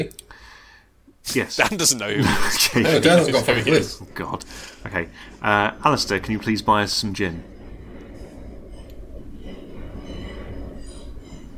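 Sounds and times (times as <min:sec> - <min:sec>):
speech: 0:01.2 - 0:07.5
train rumbling on railway tracks: 0:03.2 - 0:11.5
thin high metallic squeals of train on tracks: 0:05.7 - 0:11.5.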